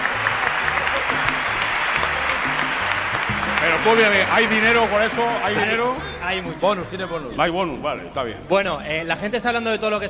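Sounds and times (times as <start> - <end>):
group applause: 0.0 - 6.2
speech: 3.8 - 10.0.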